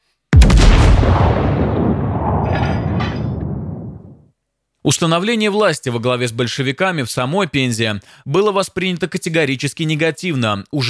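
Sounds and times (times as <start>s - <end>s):
cannon shot from a cruiser: 0.4s - 4.2s
deep rolling boom echoing: 0.4s - 4.2s
speech: 4.9s - 10.8s.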